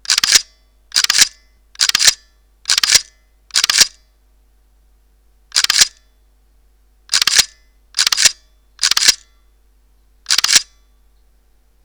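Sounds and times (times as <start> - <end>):
Pentax K-m camera shutter in continuous low RAW shooting: 0.0 - 4.0, 5.5 - 6.0, 7.1 - 9.3, 10.3 - 10.7.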